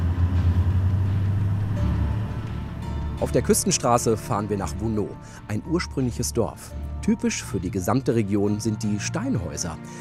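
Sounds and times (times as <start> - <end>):
car engine shifting between first and second gear: 0.0 - 3.3
speech: 3.2 - 9.9.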